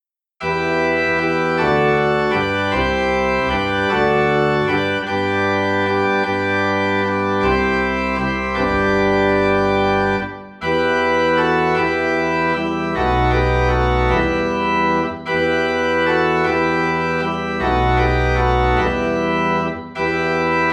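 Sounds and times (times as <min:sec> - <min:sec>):
organ playing Christmas music in E minor: 0:00.4 - 0:20.7.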